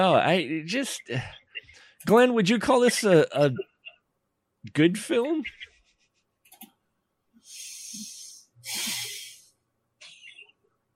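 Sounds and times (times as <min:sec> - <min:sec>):
speech: 0:00.0 - 0:01.4, 0:02.0 - 0:03.7, 0:04.6 - 0:05.7
heavy breathing: 0:07.4 - 0:09.6.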